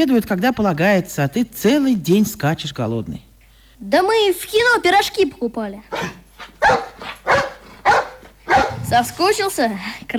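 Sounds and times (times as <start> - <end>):
speech: 0.0 - 7.2, 8.9 - 10.1
dog barking: 5.9 - 9.0.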